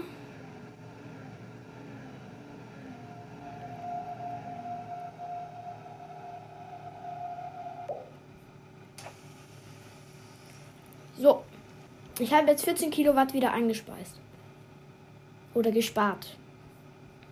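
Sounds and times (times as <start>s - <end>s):
low rumble of a simulated train arriving at a station: 0.0s - 8.2s
high-pitched squeal of simulated train brakes: 3.0s - 8.1s
speech: 11.2s - 11.5s, 12.2s - 14.3s, 15.6s - 16.4s.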